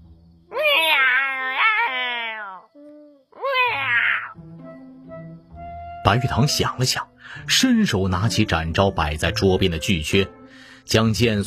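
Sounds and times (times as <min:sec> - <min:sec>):
human voice imitating a cat meowing: 0:00.5 - 0:04.4
speech: 0:06.0 - 0:11.4.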